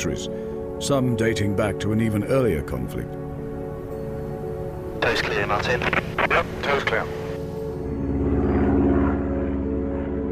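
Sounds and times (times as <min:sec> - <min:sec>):
speech: 0:00.0 - 0:03.3, 0:05.1 - 0:07.2
propeller-engine drone of a small plane landing at a small provincial airport outside Amiens: 0:04.1 - 0:10.3.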